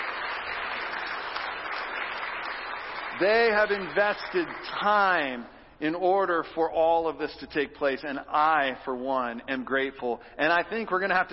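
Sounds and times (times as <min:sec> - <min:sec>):
audience applause: 0:00.0 - 0:05.4
speech: 0:03.2 - 0:11.3.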